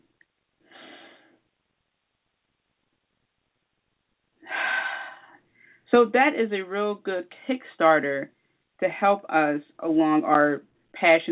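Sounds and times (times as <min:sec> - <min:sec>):
deep breath during a guided spiritual exercise: 0:00.6 - 0:01.5, 0:04.4 - 0:05.9
speech: 0:05.9 - 0:11.2.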